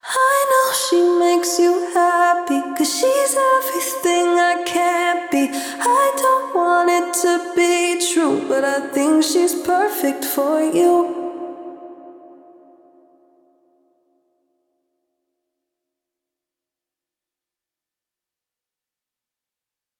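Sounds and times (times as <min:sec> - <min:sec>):
female vocal: 0:00.0 - 0:12.6.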